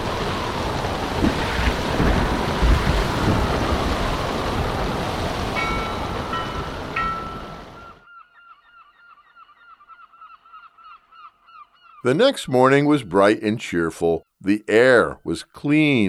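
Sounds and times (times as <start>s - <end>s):
deep thunder rumbles: 0.0s - 8.0s
dense rushing wind in a storm: 0.0s - 8.0s
surging waves in a storm: 0.0s - 8.0s
speech: 12.0s - 16.0s.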